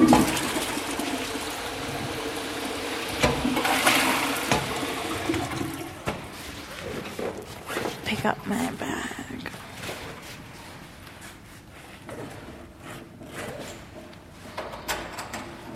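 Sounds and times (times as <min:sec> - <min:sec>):
toilet flushing with rushing swirl of water: 0:00.0 - 0:07.9
speech: 0:08.2 - 0:09.1.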